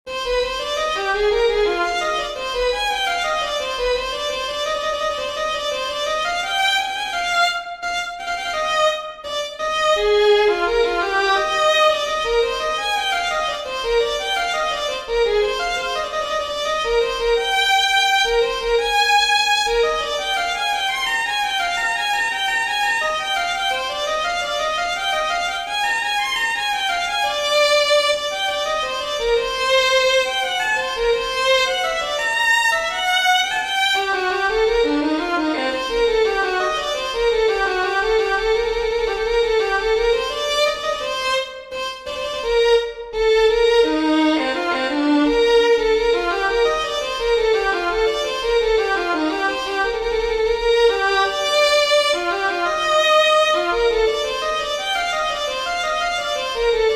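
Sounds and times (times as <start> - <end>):
violin and viola playing a piece in C minor: 0.0 - 56.9.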